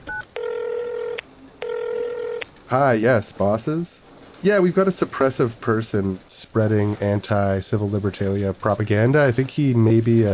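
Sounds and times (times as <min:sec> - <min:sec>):
telephone keypad dialing tones: 0:00.0 - 0:02.6
speech: 0:02.7 - 0:10.3.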